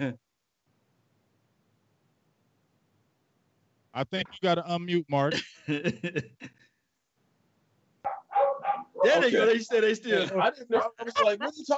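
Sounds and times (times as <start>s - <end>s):
speech: 0.0s - 0.2s, 4.0s - 6.7s, 9.0s - 11.7s
laughter: 5.3s - 6.5s, 9.0s - 11.7s
dogs barking excitedly: 8.1s - 9.3s.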